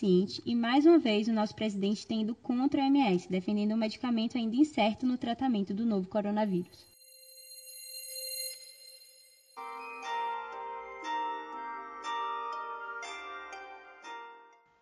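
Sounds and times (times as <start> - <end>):
speech: 0.0 - 6.9
soft sustained tone: 6.7 - 14.0
plucked koto strings playing sonified protein music: 9.6 - 14.7.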